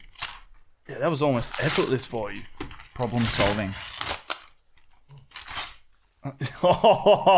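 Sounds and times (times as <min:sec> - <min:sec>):
gift wrapping paper crinkling and tearing: 0:00.0 - 0:00.5, 0:01.4 - 0:06.0
speech: 0:00.9 - 0:04.1, 0:06.2 - 0:07.3
person laughing: 0:06.2 - 0:07.3.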